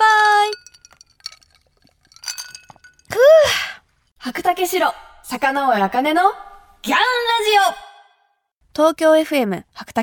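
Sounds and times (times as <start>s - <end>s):
cups clinking together in a toast: 0.4s - 3.2s
speech: 4.3s - 7.8s, 8.8s - 10.0s.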